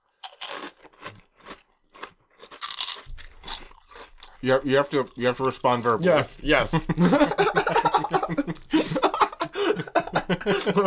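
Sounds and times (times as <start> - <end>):
crisp snack being chewed with crunching: 0.0 - 5.9
speech: 4.4 - 7.6, 10.4 - 10.8
laughter: 6.5 - 10.8.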